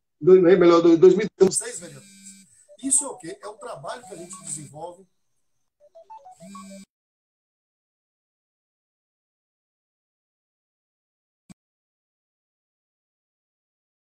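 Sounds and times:
speech: 0.2 - 2.1, 2.8 - 5.2, 6.0 - 6.9
incoming-call phone ringtone of electronic notes: 1.6 - 5.0, 5.8 - 6.9.

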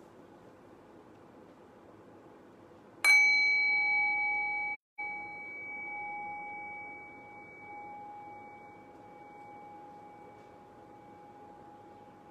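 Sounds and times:
meditation bell struck to begin a guided meditation: 3.1 - 12.2.

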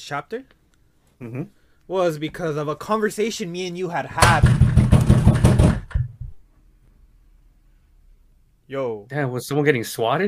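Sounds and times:
speech: 0.0 - 0.6, 1.2 - 4.7, 8.7 - 10.2
firm knocking on a door: 4.2 - 6.4.

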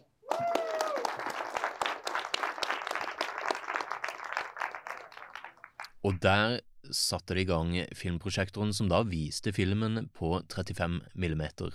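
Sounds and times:
film screening audience applauding: 0.3 - 5.9
speech: 6.0 - 11.7.

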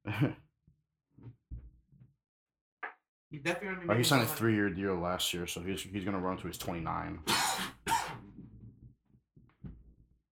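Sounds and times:
speech: 0.2 - 0.4, 3.3 - 7.8
sharp double cough: 7.3 - 8.3.

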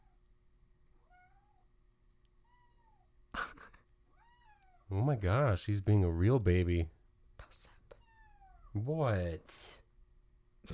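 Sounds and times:
cat meowing: 1.0 - 1.7, 2.4 - 3.1, 4.1 - 4.9, 7.9 - 8.7
speech: 4.9 - 7.7, 8.8 - 9.8.

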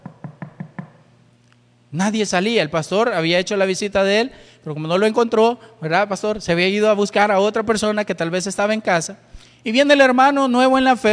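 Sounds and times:
knocking on a door: 0.0 - 1.0
speech: 1.9 - 11.1.

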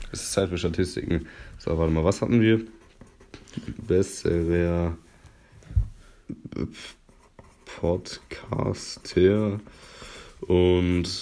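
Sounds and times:
speech: 0.1 - 2.8, 3.6 - 5.0, 6.3 - 7.0, 7.8 - 11.2
pen scratching across paper: 2.0 - 4.3, 6.9 - 9.7.

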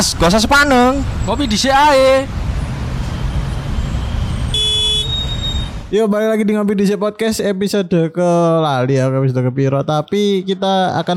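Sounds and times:
speech: 0.0 - 2.4, 5.9 - 11.1
dense road traffic rumbling: 0.0 - 6.1
car horn blast: 4.0 - 5.8.

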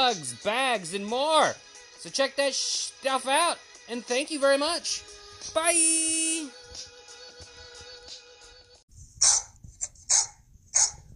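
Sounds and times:
speech: 0.0 - 6.9
dog barking: 9.2 - 11.1.

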